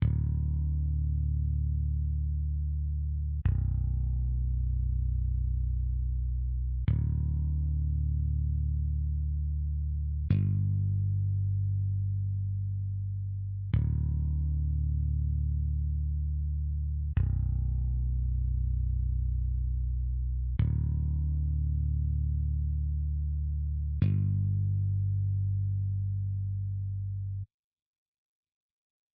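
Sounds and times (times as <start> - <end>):
dry bass intro: 0.0 - 27.5.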